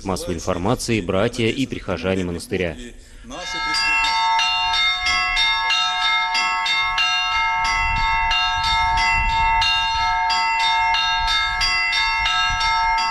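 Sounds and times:
speech: 0:00.0 - 0:03.8
bells of a bell-ringers' school training belfry at a monastery ringing: 0:03.3 - 0:13.0.

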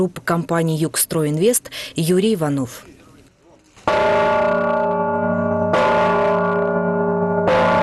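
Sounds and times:
speech: 0:00.0 - 0:03.0
large newly consecrated church bell struck after a church service: 0:03.8 - 0:07.8.

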